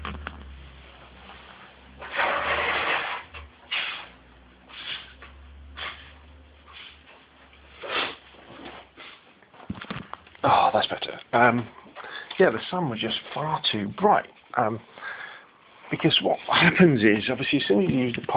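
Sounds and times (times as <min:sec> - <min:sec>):
person blowing their nose: 0:02.0 - 0:05.2, 0:07.8 - 0:08.3
sniffs and snorts: 0:03.7 - 0:07.0, 0:07.8 - 0:08.2
speech: 0:10.5 - 0:11.8, 0:12.4 - 0:15.0, 0:15.9 - 0:18.3.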